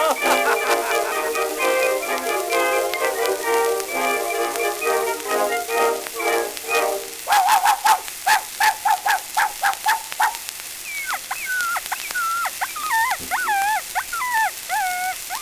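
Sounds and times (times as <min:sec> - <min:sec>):
laughter: 0:00.0 - 0:07.8
dog yelping and whimpering after being crushed: 0:08.9 - 0:15.4.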